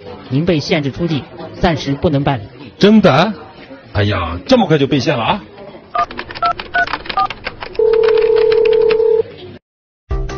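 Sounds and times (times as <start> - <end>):
speech: 0.3 - 6.2
telephone ringing: 6.0 - 9.3.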